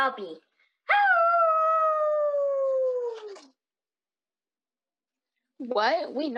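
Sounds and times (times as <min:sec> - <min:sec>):
speech: 0:00.0 - 0:00.5, 0:05.6 - 0:06.3
person imitating a werewolf howl: 0:00.9 - 0:03.5.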